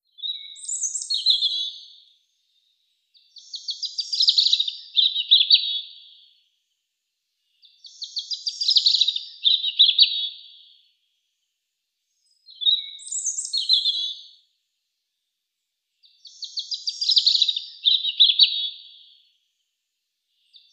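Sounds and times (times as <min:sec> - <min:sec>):
robin singing: 0:00.0 - 0:06.4, 0:07.4 - 0:10.9, 0:12.1 - 0:14.5, 0:16.0 - 0:19.4, 0:20.3 - 0:20.7.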